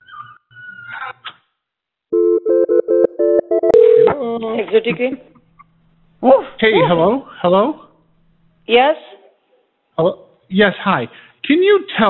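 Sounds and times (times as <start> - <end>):
short telephone beeps after a call is hung up: 2.2 - 4.2
speech: 4.3 - 5.3, 6.2 - 7.8, 8.7 - 9.2, 10.0 - 12.0.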